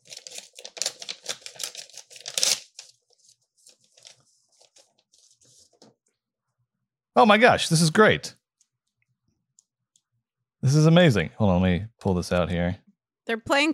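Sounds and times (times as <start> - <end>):
paper envelope tearing open: 0.0 - 5.4
speech: 7.2 - 8.4, 10.7 - 13.7.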